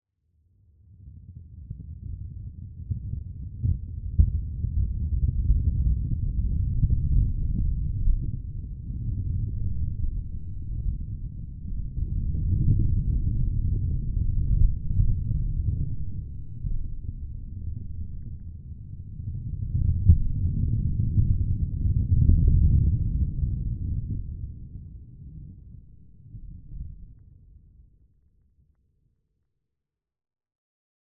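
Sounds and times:
low-frequency tremor rumble: 1.1s - 28.2s.

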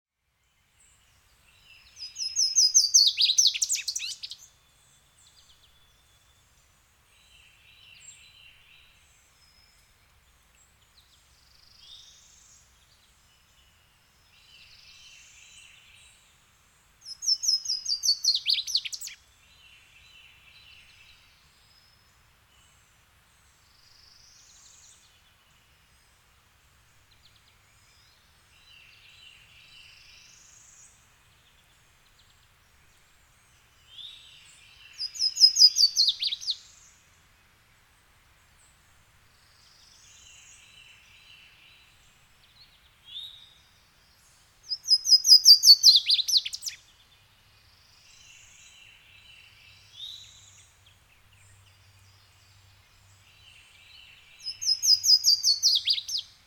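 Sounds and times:
birds in woods: 0.4s - 37.2s, 37.8s - 56.4s.

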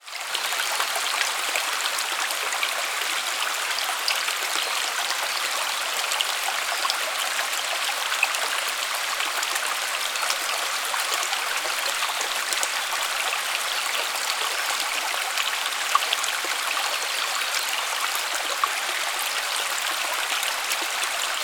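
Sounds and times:
shallow forest creek flowing in Buderim forest Queensland Australia: 0.0s - 21.4s.

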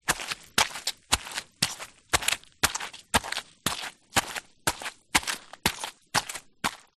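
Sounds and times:
footsteps walking on wet forest floor: 0.0s - 6.9s.

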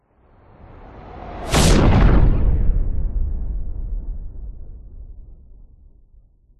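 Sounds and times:
science fiction explosion of a passing spacecraft blowing up: 1.4s - 5.0s.

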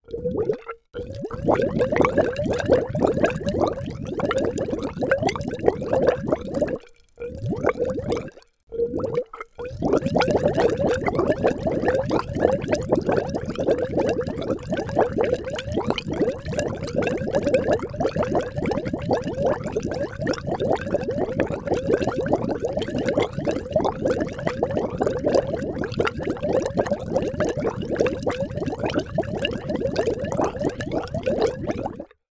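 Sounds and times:
water gurgling in a long air tube pipe: 0.0s - 32.2s.

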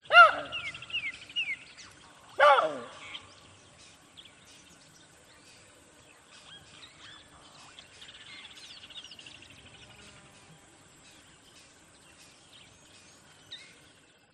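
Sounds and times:
baboon calling: 0.0s - 0.8s, 2.3s - 3.2s.

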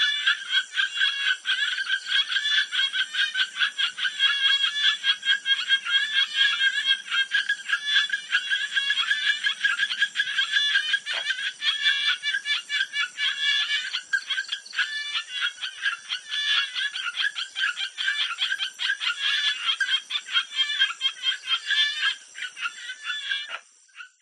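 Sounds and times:
frogs giving mating calls at a jungle pond at night in Thailand: 0.0s - 24.1s.

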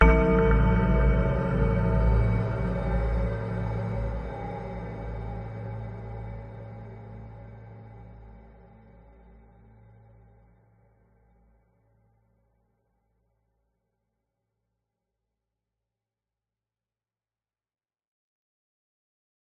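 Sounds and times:
horror hit: 0.0s - 6.3s
ghostly bell-like chime: 0.0s - 7.4s
dark sinister pads: 0.0s - 11.3s.

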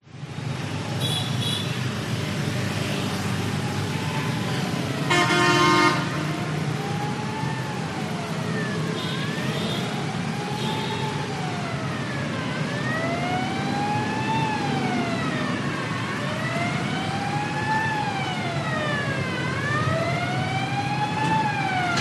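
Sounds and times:
cars passing on a busy urban road in Vietnam: 0.1s - 21.9s
siren on a busy urban road in Vietnam: 2.8s - 21.9s
horn honks on a busy urban road in Vietnam: 5.1s - 6.3s.

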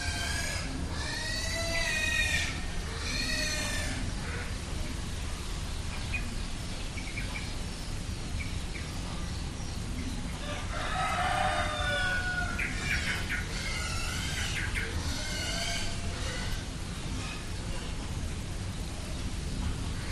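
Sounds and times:
low rumbling noise of an approaching thunderstorm: 0.0s - 20.1s
rooster crowing: 10.4s - 12.8s.

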